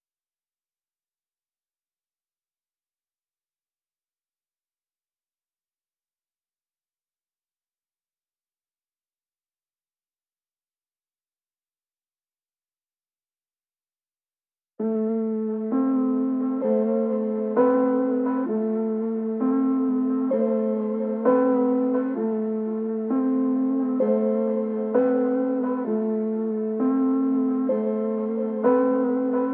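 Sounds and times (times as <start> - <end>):
piano melody loop in A minor at 130 BPM: 15.0 - 29.5.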